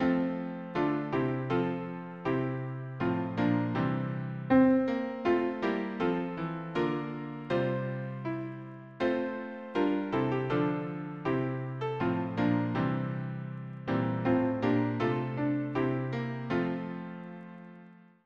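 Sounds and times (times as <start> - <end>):
piano harmony: 0.0 - 18.1.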